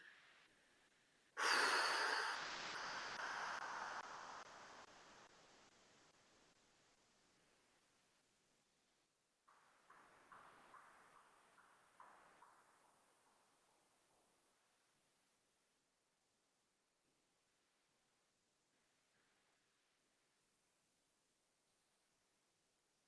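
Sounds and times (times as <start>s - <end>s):
deep slow breathing: 1.4s - 5.3s.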